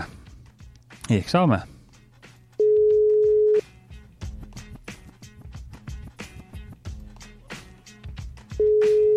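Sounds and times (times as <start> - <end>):
speech: 1.1 - 1.7
steady single-pitched telephone ringback tone: 2.6 - 3.6, 8.6 - 9.1.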